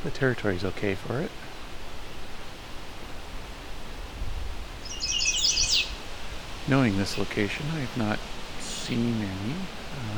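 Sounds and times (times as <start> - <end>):
speech: 0.0 - 1.6, 6.7 - 10.1
steady hiss of outdoor noise: 0.0 - 10.1
chestnut-sided warbler singing: 4.8 - 6.1.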